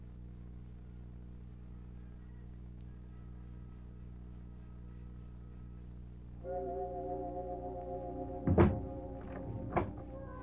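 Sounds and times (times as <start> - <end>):
low steady tonal drone: 0.0 - 10.4
door swinging shut with a heavy thunk: 8.4 - 10.2.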